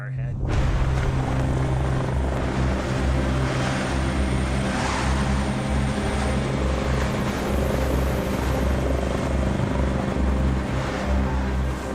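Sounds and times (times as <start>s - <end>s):
rescue helicopter rotors thumping: 0.5s - 11.9s.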